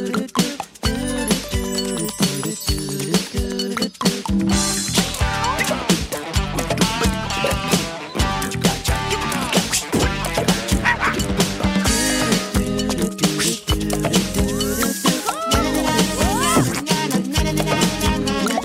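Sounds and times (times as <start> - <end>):
bright tinkling accents made by mouth: 0.0 - 5.9, 11.9 - 16.6
loud busy instrumental theme tune: 0.6 - 18.6
person imitating dog barks and yips with their voice: 15.1 - 16.9.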